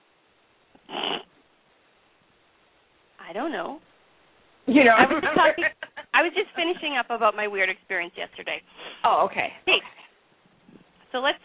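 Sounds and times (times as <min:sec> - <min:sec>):
big orange domestic cat vocalizing: 0:00.8 - 0:01.3
speech: 0:03.3 - 0:03.9, 0:04.7 - 0:10.0, 0:11.1 - 0:11.4.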